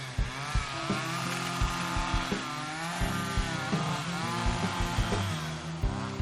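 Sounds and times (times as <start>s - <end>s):
chainsaw engine revving while clearing downed trees: 0.0s - 6.1s.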